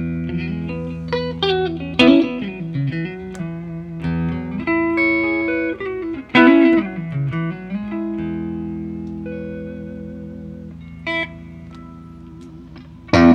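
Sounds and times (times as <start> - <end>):
electric guitar through a clean amp tone with spring reverb: 0.0 - 13.3.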